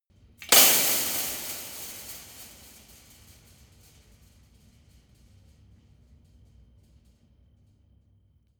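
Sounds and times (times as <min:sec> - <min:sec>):
long metal impact on fence: 0:00.4 - 0:03.6.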